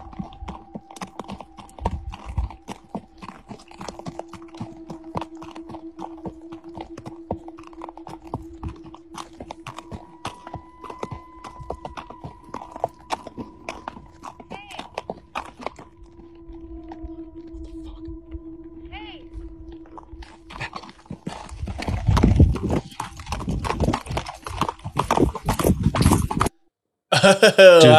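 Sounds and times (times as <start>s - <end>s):
horse hooves clip-clopping while being ridden: 0.0s - 16.2s, 19.8s - 26.5s
sustained tonal hums: 0.0s - 26.7s
laughter: 27.1s - 27.9s
speech: 27.3s - 27.9s.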